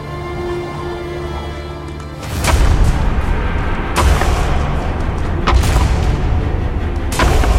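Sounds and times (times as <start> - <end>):
horned males clashing heads in a fight over a female: 1.9 - 7.5
low rumble: 2.3 - 7.5.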